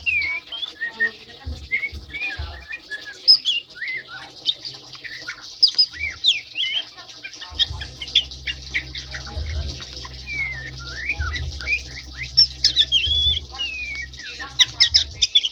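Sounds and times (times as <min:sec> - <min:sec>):
white-eye song: 0:00.0 - 0:15.5
low hum: 0:07.5 - 0:15.5.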